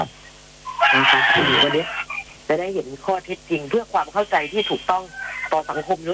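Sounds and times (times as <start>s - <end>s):
rooster crowing: 0.7s - 2.3s, 4.6s - 6.0s
speech: 1.0s - 6.1s.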